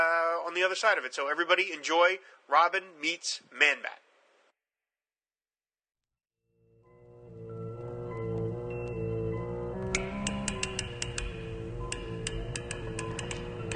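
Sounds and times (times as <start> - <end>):
speech: 0.5 - 4.0
sustained droning musical backdrop: 6.9 - 13.7
amplified clicks of a bank lock's tumblers: 9.8 - 13.7.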